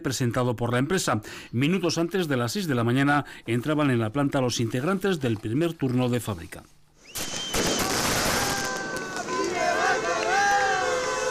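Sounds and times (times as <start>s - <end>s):
speech: 0.0s - 7.4s
voices shouting and cheering: 8.2s - 11.3s
workers from other companies applauding: 8.2s - 11.3s.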